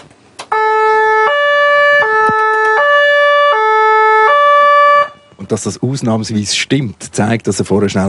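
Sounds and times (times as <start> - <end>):
two-tone siren of a lake police boat in the harbour of Zug: 0.5 - 5.5
speech: 5.6 - 8.0.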